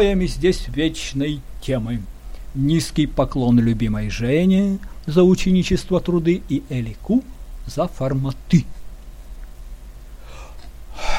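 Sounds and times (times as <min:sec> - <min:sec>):
speech: 0:00.0 - 0:08.8
deep breath in and out: 0:10.2 - 0:11.1.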